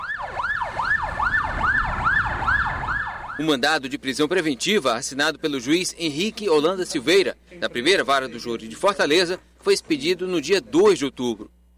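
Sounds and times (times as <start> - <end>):
police capture-unit vehicle siren arriving in Fortaleza: 0.0 - 3.5
low rumble of road noise: 0.0 - 10.0
speech: 3.4 - 11.6.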